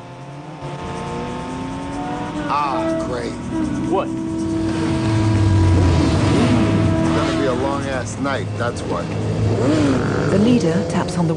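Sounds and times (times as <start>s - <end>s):
engines of a fleet of motorbikes surrounding a car: 0.0s - 11.3s
speech: 2.5s - 5.0s, 7.6s - 11.3s.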